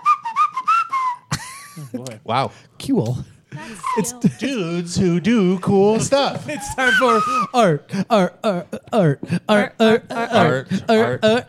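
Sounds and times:
person whistling: 0.0 - 1.4, 3.6 - 5.0, 6.5 - 7.6
speech: 1.8 - 11.4
laughter: 3.6 - 11.4.

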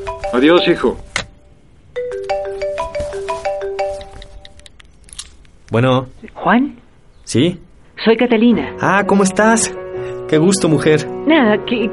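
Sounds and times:
cell phone ringtone for an incoming call: 0.0 - 1.0, 2.0 - 4.6
speech: 0.3 - 1.1, 5.7 - 11.9.

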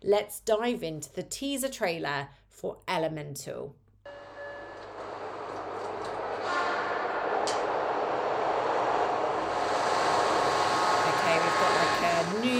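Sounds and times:
speech: 0.0 - 3.8
brief rising mechanical whine: 4.1 - 12.5
subway train roaring past: 4.1 - 12.5.

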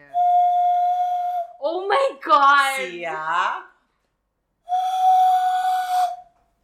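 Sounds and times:
loud breathy whistled tone imitating a conch shell horn: 0.0 - 1.7, 4.6 - 6.4
speech: 1.7 - 3.7.

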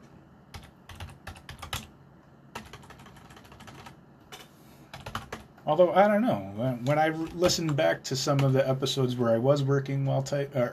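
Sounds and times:
typing on a computer keyboard: 0.5 - 1.9, 2.5 - 5.5, 6.8 - 8.6
speech: 5.6 - 10.7.

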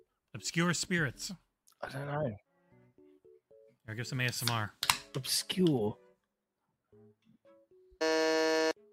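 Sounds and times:
speech: 0.4 - 2.4, 3.9 - 6.0
loud harsh electronic quiz game buzzer: 8.0 - 8.8.

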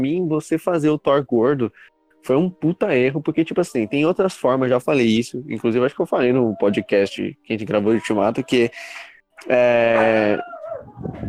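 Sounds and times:
speech: 0.0 - 11.2
dog barking: 9.8 - 11.2.

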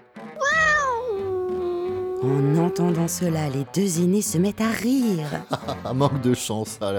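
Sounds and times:
cat meowing: 0.4 - 3.0
speech: 2.2 - 6.9
laughter: 5.2 - 6.3.

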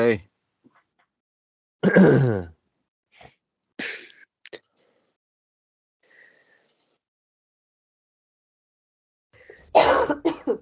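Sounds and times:
speech: 0.0 - 0.3, 1.8 - 2.6
person sneezing forcefully: 1.8 - 2.5, 9.8 - 10.6
faint breaths: 3.2 - 5.2, 6.0 - 7.0, 9.4 - 9.7.

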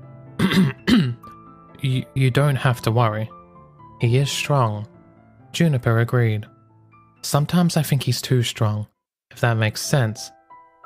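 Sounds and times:
person coughing: 0.4 - 1.3
speech: 1.8 - 3.4, 4.0 - 4.9, 5.5 - 6.5, 7.2 - 10.4.

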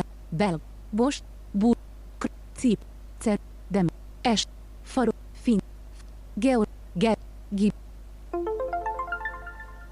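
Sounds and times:
speech: 0.3 - 1.8, 2.6 - 5.6, 6.4 - 7.8
e-reader folder navigation electronic beeps rising in pitch: 8.4 - 9.9.

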